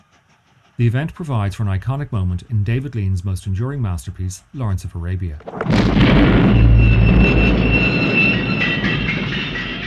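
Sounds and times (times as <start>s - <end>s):
speech: 0.8s - 7.9s
loud deep explosion of a train being blown up: 5.4s - 9.8s.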